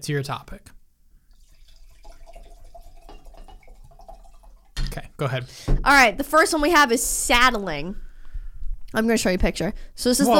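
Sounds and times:
speech: 0:00.0 - 0:00.8, 0:05.2 - 0:08.0, 0:08.9 - 0:10.3
wine glugging and trickling into a glass: 0:01.2 - 0:05.0.

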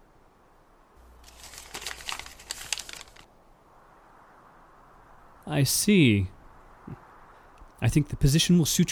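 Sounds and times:
newspaper being handled and rustled: 0:01.0 - 0:03.3
speech: 0:05.5 - 0:06.4, 0:07.8 - 0:08.9.

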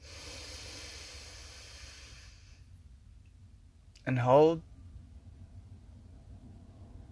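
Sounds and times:
big deep breath in during a guided breathing exercise: 0:00.0 - 0:02.8
speech: 0:04.1 - 0:04.7.

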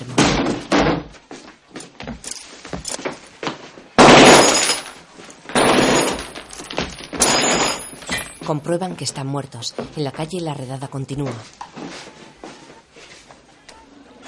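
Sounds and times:
door being kicked open by soldiers: 0:00.0 - 0:01.2, 0:05.5 - 0:08.3
gunfire into hospital beds: 0:04.0 - 0:04.9, 0:05.5 - 0:06.4
speech: 0:08.5 - 0:12.0.

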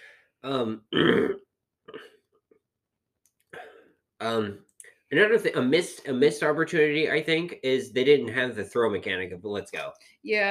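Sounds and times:
speech: 0:00.4 - 0:01.4, 0:04.3 - 0:10.4
phlegmy throat clearing: 0:00.5 - 0:02.2, 0:03.6 - 0:04.5.

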